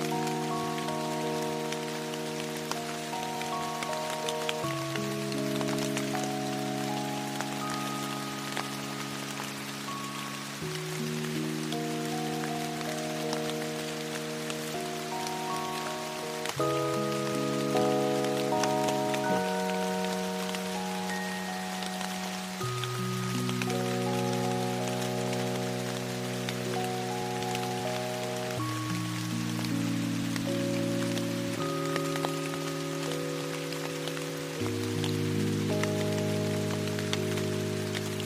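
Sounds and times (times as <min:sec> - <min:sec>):
slow soft sustained music with held chords: 0:00.0 - 0:38.2
steady rain hissing: 0:00.0 - 0:38.2.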